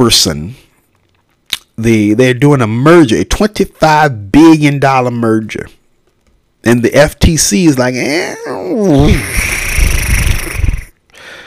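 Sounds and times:
speech: 0.0 - 0.6, 1.8 - 5.8, 6.6 - 9.6
person imitating a horse whinny and snort: 8.7 - 11.0.

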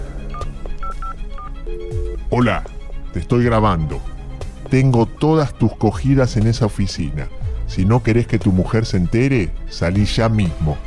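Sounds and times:
phone keypad dialing tones: 0.3 - 2.2
speech: 1.7 - 4.1, 4.7 - 10.8.

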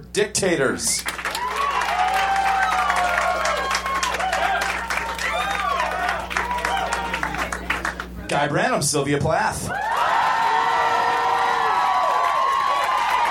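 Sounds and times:
speech: 0.1 - 1.4, 8.3 - 10.0
crowd applauding loudly: 1.0 - 8.2, 9.7 - 13.3
scattered cheers and whoops: 1.2 - 7.5, 9.7 - 13.3.

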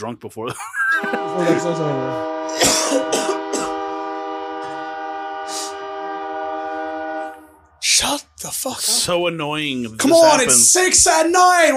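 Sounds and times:
speech: 0.0 - 3.4, 8.0 - 11.7
laughter: 0.4 - 3.1
passing train long steady horn: 1.0 - 7.7
short throaty bursts: 1.0 - 9.6.

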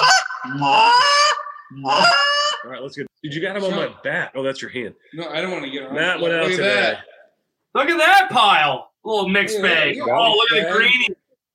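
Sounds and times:
duck call blown as a goose call for a mic check: 0.0 - 2.9
speech: 0.5 - 0.9, 1.7 - 11.2.

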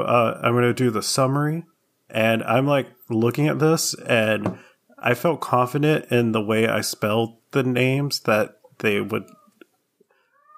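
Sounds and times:
speech: 0.0 - 9.4
dying cat chirping and meowing in a house: 9.2 - 9.6, 10.3 - 10.5.

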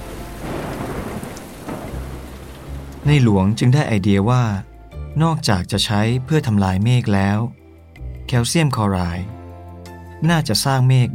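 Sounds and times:
heavy rain pouring down: 0.0 - 3.7
speech: 3.0 - 7.6, 8.3 - 9.4, 10.2 - 11.1.

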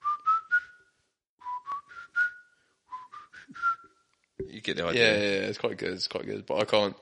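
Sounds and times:
person whistling a short bright melody: 0.0 - 4.1
speech: 4.5 - 7.0.

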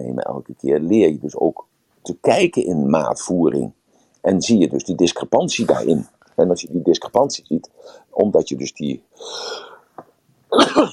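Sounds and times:
speech: 0.0 - 9.7, 10.5 - 10.9
person sneezing: 5.6 - 6.0, 10.5 - 10.9.

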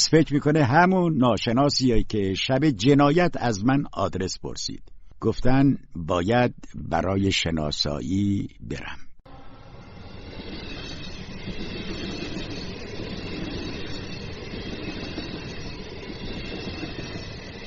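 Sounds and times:
speech: 0.1 - 9.1
train heading to Liverpool rumbling on rails heard from inside: 9.3 - 17.6.

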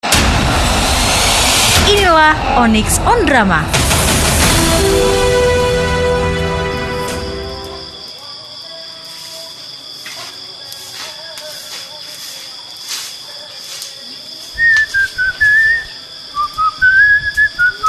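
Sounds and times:
noisy musical burst: 0.0 - 8.0
speech: 1.9 - 3.8
person whistling a tune: 14.6 - 17.8.

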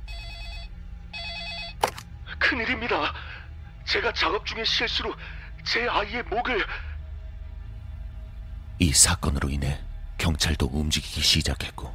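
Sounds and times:
telephone ringing in electronic trill: 0.0 - 2.0
low hum: 0.0 - 11.9
speech: 2.5 - 6.8, 8.8 - 11.9.

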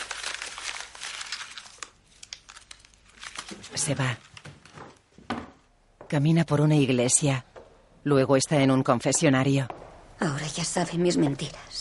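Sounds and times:
paper letter crumpled by hand: 0.0 - 4.5
speech: 3.7 - 4.3, 6.1 - 11.7.

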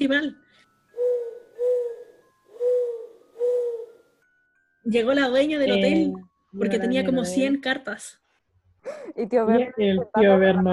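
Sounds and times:
speech: 0.0 - 1.2, 4.8 - 8.2, 8.8 - 10.7
owl hooting: 0.9 - 4.0.

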